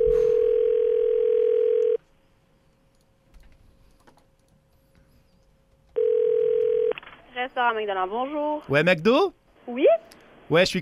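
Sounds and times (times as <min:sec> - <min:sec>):
telephone ringback tone on an outgoing call: 0:00.0 - 0:02.0, 0:06.0 - 0:06.9
speech: 0:07.5 - 0:10.8.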